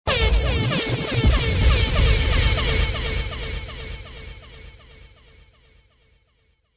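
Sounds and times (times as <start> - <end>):
DJ multiple horn effect: 0.1 - 4.5.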